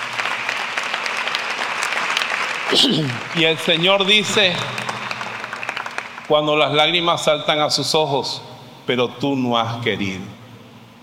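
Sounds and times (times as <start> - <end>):
audience applauding in praise of God's love: 0.0 - 7.0
speech: 2.7 - 4.8, 6.3 - 10.4.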